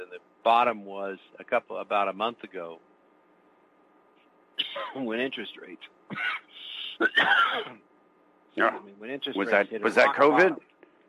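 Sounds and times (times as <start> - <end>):
speech: 0.4 - 2.9, 4.8 - 7.9, 8.6 - 10.7
person coughing after liquid goes down the wrong way: 4.6 - 5.1, 6.1 - 7.8, 9.9 - 10.4.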